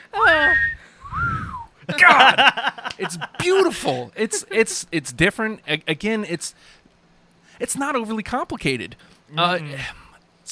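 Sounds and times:
person whistling a song melody: 0.5 - 1.7
laughter: 1.9 - 4.8
speech: 2.2 - 6.8, 7.6 - 10.5.

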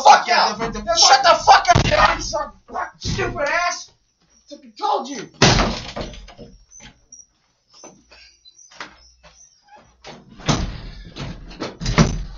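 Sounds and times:
speech: 0.0 - 1.5
door closing with clunks and rattles: 0.5 - 3.7, 5.4 - 7.0, 10.0 - 12.3.

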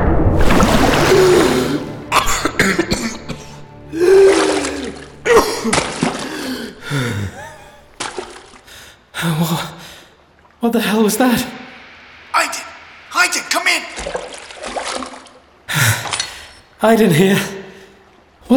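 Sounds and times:
loud splash of person surging up out of water: 0.0 - 2.6, 3.9 - 6.6, 13.8 - 15.4
water sloshing: 0.0 - 8.9, 13.7 - 16.8
person gasping and coughing for breath: 1.3 - 7.8
speech: 10.6 - 11.6, 16.8 - 17.5.

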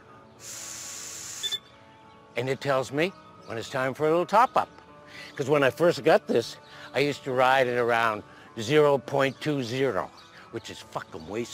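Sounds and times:
blowing into a small handheld breathalyzer: 0.4 - 1.7
quick electronic breathalyzer beeps: 1.4 - 1.7
speech: 2.4 - 11.5.

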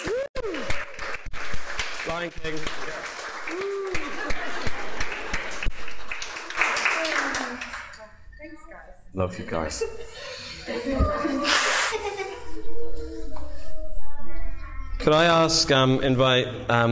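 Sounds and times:
audience clapping after a dedication prayer: 0.0 - 8.1
speech: 2.1 - 4.4, 9.2 - 11.7, 15.1 - 16.9
laughter: 3.7 - 5.7, 9.5 - 13.2.

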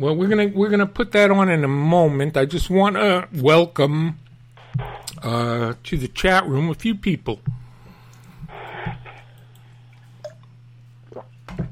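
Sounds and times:
speech: 0.0 - 4.2, 4.8 - 7.6
low steady electrical hum: 0.0 - 11.7
sipping water: 7.5 - 11.7.

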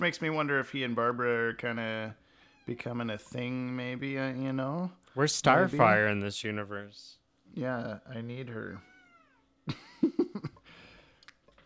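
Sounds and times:
speech: 0.0 - 8.9, 9.6 - 10.2
cat meowing: 2.4 - 2.8, 8.8 - 9.5.

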